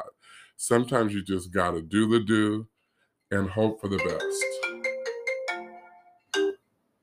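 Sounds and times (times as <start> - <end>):
speech: 0.6 - 2.7, 3.3 - 4.6
phone ringtone with three bright chiming notes: 4.0 - 6.6.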